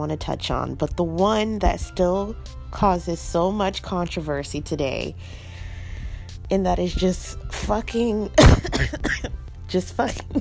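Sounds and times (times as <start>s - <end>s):
speech: 0.0s - 5.5s, 6.5s - 10.3s
single abrupt cough: 8.4s - 9.3s.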